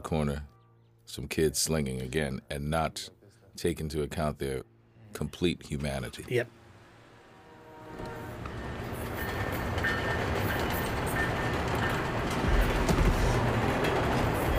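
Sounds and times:
speech: 0.0 - 0.5, 1.1 - 6.6
commuter train rumbling past on rails: 5.1 - 14.5
train wheels clicking and rattling over the track: 8.0 - 14.5.

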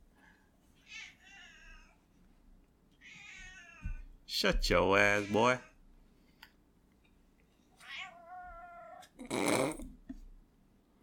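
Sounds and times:
cat meowing: 0.8 - 2.0, 3.0 - 4.0, 7.8 - 9.2
speech: 4.4 - 5.7.

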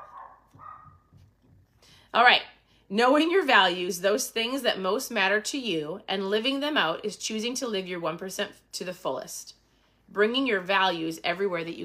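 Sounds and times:
dog barking: 0.0 - 1.1
speech: 2.1 - 11.8.

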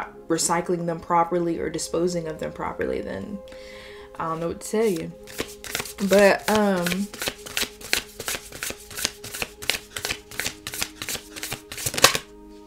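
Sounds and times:
speech: 0.3 - 7.3
deck of cards shuffling: 4.2 - 12.3.

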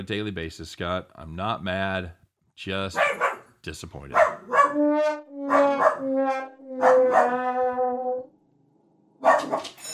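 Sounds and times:
speech: 0.0 - 7.4
dog barking at somebody it sees: 3.0 - 3.5, 4.2 - 8.2, 9.2 - 9.8.

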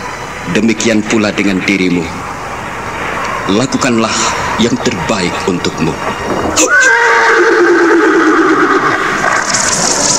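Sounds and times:
speech: 0.5 - 2.3, 3.5 - 7.7
horse whinnying: 6.5 - 10.1.

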